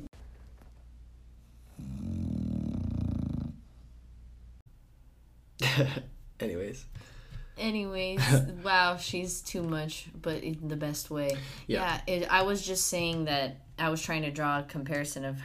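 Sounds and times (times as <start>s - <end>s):
low rumbling snore: 1.6s - 3.8s
speech: 5.8s - 15.4s.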